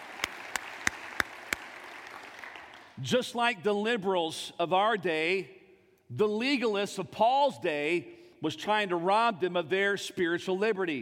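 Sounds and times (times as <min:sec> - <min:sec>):
congregation hand claps during a church service: 0:00.0 - 0:03.0
speech: 0:03.0 - 0:11.0.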